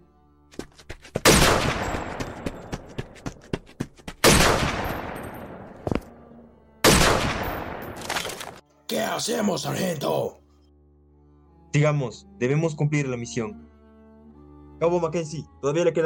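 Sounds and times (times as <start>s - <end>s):
heavy gunshots in a battlefield scene: 1.2s - 2.4s, 4.2s - 5.6s, 6.8s - 8.0s
speech: 9.0s - 10.4s, 11.8s - 13.7s, 14.8s - 16.0s.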